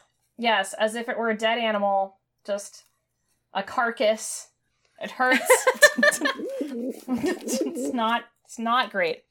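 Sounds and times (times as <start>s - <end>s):
speech: 0.4s - 2.9s, 3.5s - 9.2s
laughter: 5.3s - 8.0s
angry bird giving low wavering coo-like calls: 6.2s - 8.0s.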